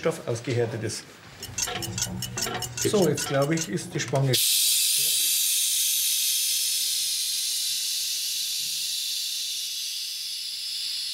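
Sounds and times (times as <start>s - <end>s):
speech: 0.0s - 4.5s
steam hissing from a pressure pot fitted with a hose: 4.3s - 11.1s.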